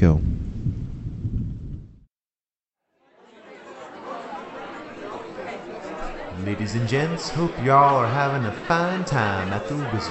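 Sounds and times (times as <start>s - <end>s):
speech: 0.0s - 0.3s, 6.4s - 10.0s
loud thunder rumbling: 0.0s - 2.0s
laughter: 3.2s - 10.0s.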